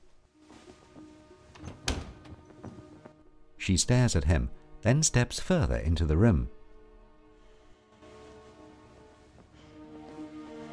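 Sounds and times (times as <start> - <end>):
bedroom door closing thud: 1.6 - 2.4
speech: 3.7 - 6.6.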